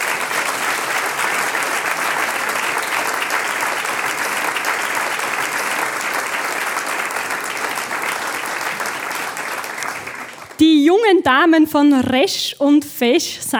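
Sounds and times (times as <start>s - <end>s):
large audience applauding: 0.0s - 10.6s
speech: 11.1s - 13.5s.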